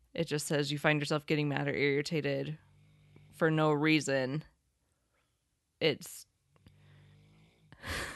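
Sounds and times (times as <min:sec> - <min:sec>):
speech: 0:00.2 - 0:02.7, 0:03.4 - 0:04.5, 0:05.8 - 0:06.3
woman snoring: 0:06.7 - 0:08.1.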